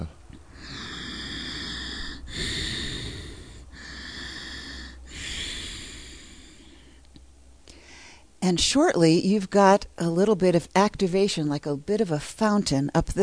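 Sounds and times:
deep Ujjayi yoga breathing: 0.0 - 8.4
speech: 8.5 - 13.2.

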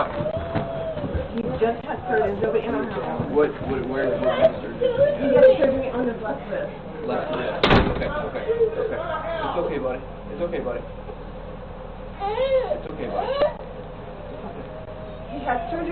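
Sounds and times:
speech: 0.0 - 0.2, 1.6 - 11.2, 12.2 - 13.7, 15.4 - 15.9
voices and commotion: 0.0 - 11.2, 12.6 - 15.9
door being kicked in: 7.6 - 8.2.

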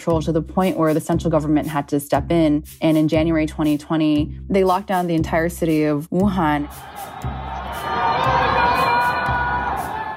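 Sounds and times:
speech: 0.0 - 7.4
residents screaming for help from high-rise apartments during lockdown: 6.6 - 10.1.

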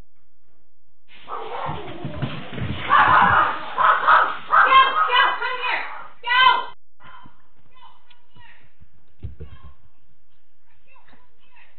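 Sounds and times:
dog barking while chasing a bear: 1.3 - 1.8, 2.9 - 6.2.

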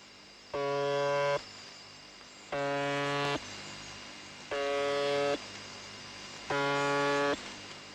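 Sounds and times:
shortwave buzzer station signal buzzes on 4625 kHz: 0.0 - 7.9
steady hiss of shortwave radio static: 0.5 - 1.5, 2.5 - 3.5, 4.4 - 7.9.

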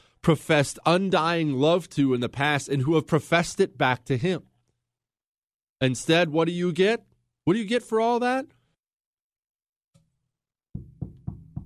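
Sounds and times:
speech: 0.2 - 4.5, 5.8 - 8.6
soft tap on a door: 10.8 - 11.6.

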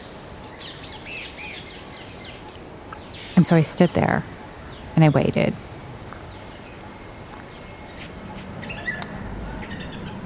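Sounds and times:
birds singing and chirping in quiet woods: 0.0 - 10.2
speech: 3.4 - 4.4, 5.0 - 5.7.

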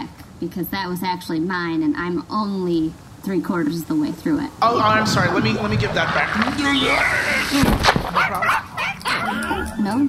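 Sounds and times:
noisy background: 0.0 - 10.0
speech: 0.4 - 8.6, 9.8 - 10.0
dog yipping and whimpering: 8.1 - 10.0.

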